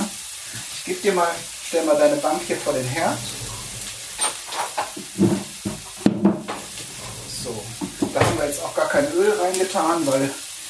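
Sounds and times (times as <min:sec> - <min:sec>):
meatballs sizzling in a nonstick frying pan on a stove: 0:00.0 - 0:02.4, 0:08.4 - 0:10.6
speech: 0:00.9 - 0:03.4, 0:08.5 - 0:10.4
scraping clatters of meatballs moved in a frying pan: 0:02.1 - 0:09.2.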